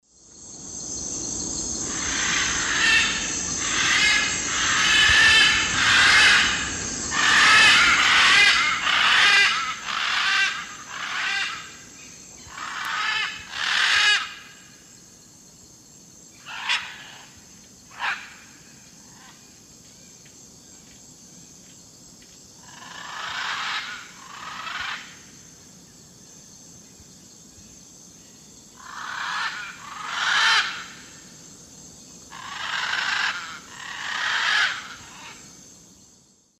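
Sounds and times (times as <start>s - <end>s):
Ara ararauna pair calling while landing in South America Eastern Lowlands: 1.9s - 14.6s, 28.8s - 31.1s, 32.3s - 35.4s.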